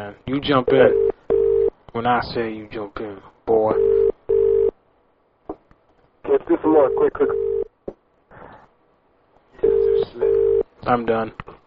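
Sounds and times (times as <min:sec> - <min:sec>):
speech: 0:00.0 - 0:01.1, 0:02.0 - 0:04.0, 0:06.3 - 0:07.6, 0:10.0 - 0:11.5
electronic telephone ring tone over the line: 0:00.7 - 0:01.7, 0:03.8 - 0:04.7, 0:06.9 - 0:07.7, 0:09.6 - 0:10.6.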